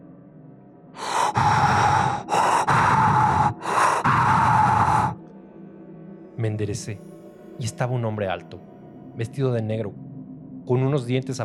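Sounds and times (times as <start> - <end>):
eerie heavy rasping breaths: 1.0 - 5.2
speech: 6.4 - 10.0, 10.6 - 11.4.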